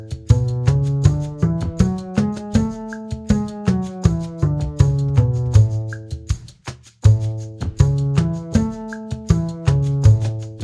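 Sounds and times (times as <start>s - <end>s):
scales in concert A: 0.3s - 5.8s, 7.8s - 10.6s.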